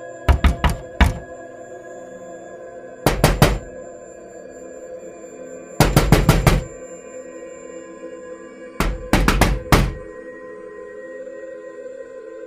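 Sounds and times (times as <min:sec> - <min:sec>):
knocking on a bedroom door: 0:00.3 - 0:01.3, 0:03.1 - 0:03.7, 0:05.8 - 0:06.8, 0:08.8 - 0:10.1.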